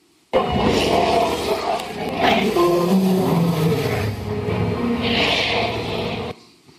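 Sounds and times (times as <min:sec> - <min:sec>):
dinosaur roar from a documentary: 0:00.4 - 0:06.4.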